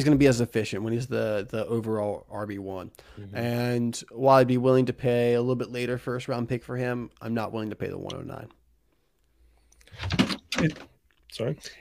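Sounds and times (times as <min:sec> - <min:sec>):
speech: 0:00.0 - 0:08.6, 0:10.0 - 0:11.8
items rattling as they tumble: 0:09.8 - 0:11.0
objects knocked off a desk clattering: 0:10.0 - 0:10.9.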